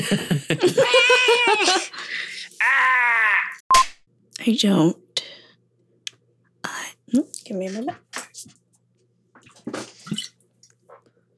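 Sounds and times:
speech: 0.0s - 0.6s, 4.5s - 5.0s, 7.1s - 8.6s
faint steady hum: 0.0s - 2.6s, 4.1s - 11.3s
laughter: 0.0s - 3.3s
person taking a swig of water: 9.4s - 11.0s.

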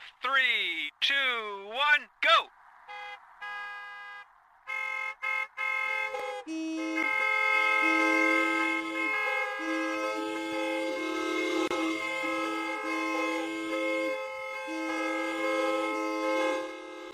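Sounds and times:
speech: 0.3s - 2.6s
chorus of many car horns honking together at sports complexes: 2.9s - 17.1s.

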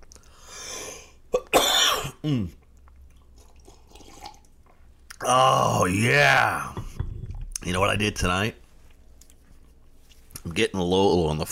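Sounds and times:
person clearing throat: 1.3s - 2.6s
person coughing: 1.4s - 2.6s
speech: 2.2s - 2.6s, 5.2s - 6.8s, 7.6s - 8.6s, 10.4s - 11.5s.

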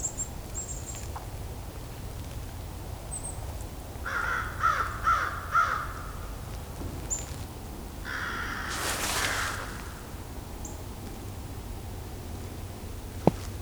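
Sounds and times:
outdoor noise: 0.0s - 13.6s
crow cawing: 4.0s - 6.2s, 8.1s - 10.1s.

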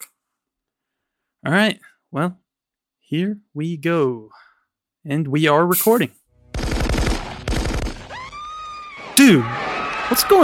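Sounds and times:
speech: 1.4s - 2.4s, 3.1s - 6.2s, 9.2s - 10.4s
rapid bursts of gunfire: 6.4s - 8.8s.

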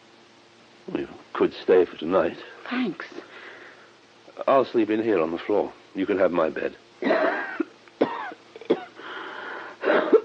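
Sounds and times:
speech: 0.9s - 3.3s, 4.4s - 7.5s
bad harsh raspy coughing: 7.0s - 9.2s, 9.8s - 10.2s.

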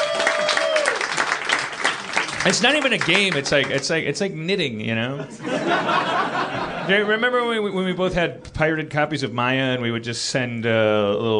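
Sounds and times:
live audience applause: 0.0s - 3.9s
speech: 2.4s - 11.3s
laughter: 5.2s - 7.3s.

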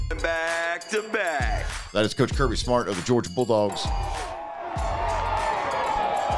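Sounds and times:
speech: 0.2s - 4.3s
large crowd cheering at a championship parade on a university campus: 3.7s - 6.3s.

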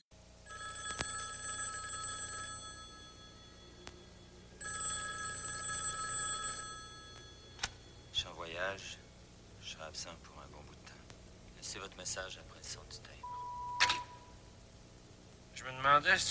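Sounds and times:
telephone ringing indoors: 0.4s - 8.2s
speech: 8.6s - 9.0s, 9.7s - 10.8s, 11.7s - 13.2s, 15.6s - 16.2s.

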